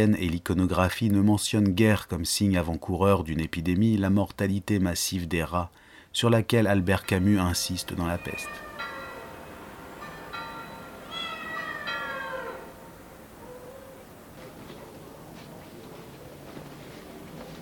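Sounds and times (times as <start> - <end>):
speech: 0.0 - 8.7
quiet hum: 0.0 - 17.5
cat meowing: 8.1 - 9.3, 11.0 - 12.8.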